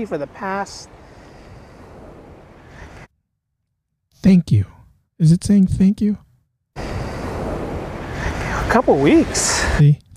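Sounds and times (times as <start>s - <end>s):
speech: 0.0s - 1.0s, 4.2s - 6.2s, 8.7s - 10.0s
ocean surf on the shore: 0.0s - 3.1s, 6.8s - 9.8s
wind buffeting: 0.0s - 3.1s, 6.8s - 9.8s.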